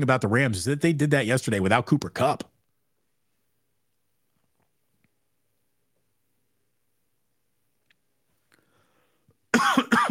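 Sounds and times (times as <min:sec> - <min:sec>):
speech: 0:00.0 - 0:02.5
person coughing from a tickle in the throat: 0:09.5 - 0:10.0.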